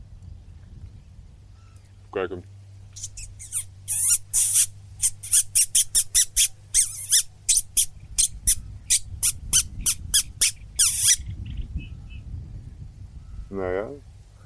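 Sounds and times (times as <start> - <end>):
low steady hum: 0.0 - 14.4
reed warbler call: 1.4 - 12.3
speech: 2.1 - 3.1.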